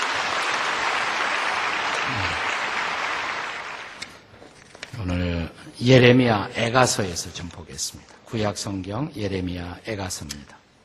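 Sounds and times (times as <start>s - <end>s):
audience applauding: 0.0s - 4.2s
speech: 5.0s - 10.6s.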